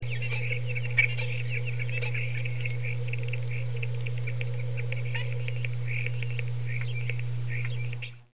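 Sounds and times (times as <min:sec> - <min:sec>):
starling: 0:00.0 - 0:08.3.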